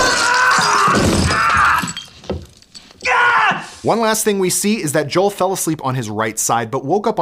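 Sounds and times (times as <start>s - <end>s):
falling glass shards tinkling and clinking: 0.0s - 3.1s
glass shattering: 0.0s - 3.2s
speech: 3.8s - 7.2s.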